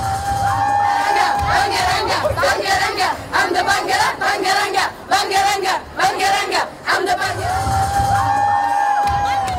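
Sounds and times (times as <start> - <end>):
crowd of children chanting: 0.0 - 8.3
crowd of children cheering and shouting at an airport homecoming in Bulgaria: 0.1 - 2.5, 7.9 - 9.5.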